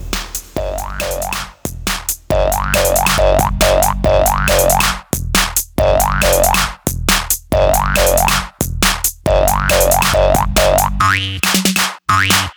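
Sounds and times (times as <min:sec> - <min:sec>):
bouncy poing-style electronic dance music track: 0:00.0 - 0:12.5.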